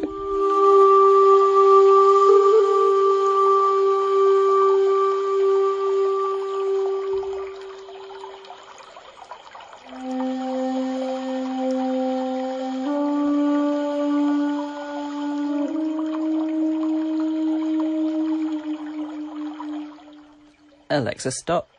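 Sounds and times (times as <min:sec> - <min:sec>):
breathy tones like a low flute or panpipe: 0:00.0 - 0:20.9
faint water trickling in a Japanese garden ambience: 0:00.0 - 0:21.7
speech: 0:21.2 - 0:21.7.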